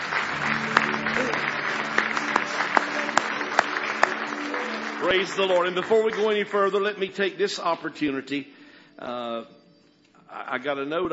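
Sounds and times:
audience applause at a church worship service: 0:00.0 - 0:07.2
speech: 0:05.0 - 0:09.6, 0:10.3 - 0:11.1.

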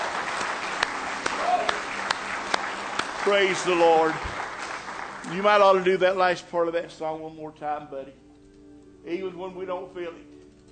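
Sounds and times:
church audience clapping in praise during a morning service: 0:00.0 - 0:06.3
speech: 0:03.2 - 0:04.3, 0:05.3 - 0:08.2, 0:09.0 - 0:10.3.

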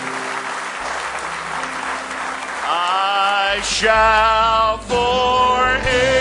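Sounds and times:
audience clapping: 0:00.0 - 0:03.9
speech: 0:03.5 - 0:06.1.

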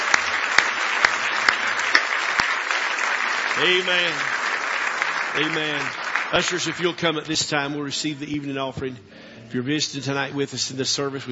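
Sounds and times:
audience clapping in praise at an evening church service: 0:00.0 - 0:08.5
speech: 0:03.6 - 0:04.4, 0:05.3 - 0:11.2.

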